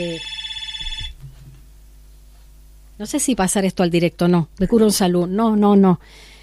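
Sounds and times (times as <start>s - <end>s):
speech: 0.0s - 0.3s, 3.0s - 6.3s
telephone ringing with an electronic trill: 0.0s - 1.2s.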